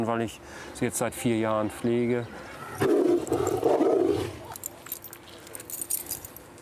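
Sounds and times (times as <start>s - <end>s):
speech: 0.0s - 3.8s
tiger roaring at feeding time: 2.6s - 4.6s
metallic clinks: 4.5s - 6.6s.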